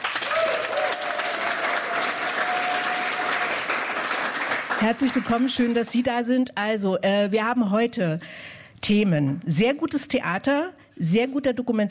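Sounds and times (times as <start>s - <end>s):
large studio audience applause at an evening talk show: 0.0s - 5.9s
speech: 4.8s - 11.8s.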